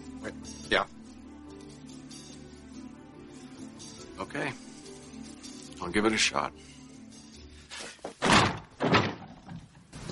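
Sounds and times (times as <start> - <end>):
speech: 0.2 - 1.0, 4.2 - 4.7, 5.8 - 6.7
door being kicked open: 8.2 - 9.6.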